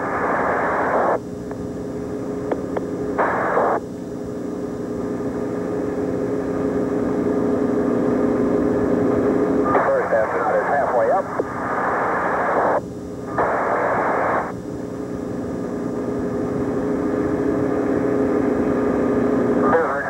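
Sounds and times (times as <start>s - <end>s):
crackly radio transmission: 0.0s - 1.2s, 2.5s - 3.9s, 9.6s - 14.6s, 19.4s - 20.0s
helicopter engine and rotor roar during astronaut recovery: 1.2s - 13.6s, 14.5s - 20.0s.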